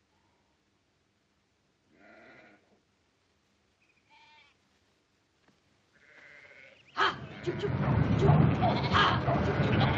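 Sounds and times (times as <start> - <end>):
flock of sheep bleating: 2.0 - 2.6, 6.0 - 7.7, 8.6 - 9.9
indistinct voices: 7.0 - 9.9
dense rumbling background: 7.2 - 9.9.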